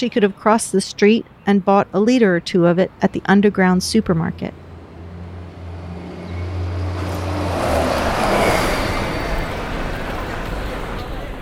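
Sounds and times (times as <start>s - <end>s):
speech: 0.0s - 4.6s
busy city street traffic rumbling: 0.0s - 11.4s
loud vehicle passing: 3.8s - 11.4s.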